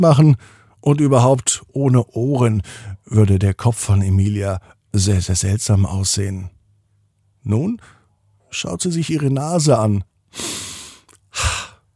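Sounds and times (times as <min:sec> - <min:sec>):
speech: 0:00.0 - 0:06.6, 0:07.4 - 0:10.5
person drawing a deep breath in through the nose: 0:10.3 - 0:11.8.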